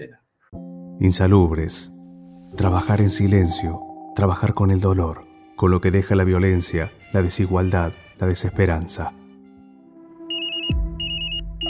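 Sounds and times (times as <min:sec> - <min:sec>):
speech: 0:00.0 - 0:09.2
telephone ringing in short electronic bursts: 0:10.3 - 0:11.6.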